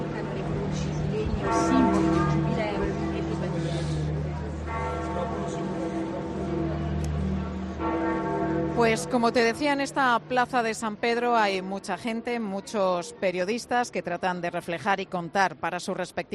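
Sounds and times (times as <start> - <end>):
faint murmur of voices in a large open space: 0.0 - 7.8
church bells tolling for a death: 0.0 - 10.7
speech: 8.9 - 16.3.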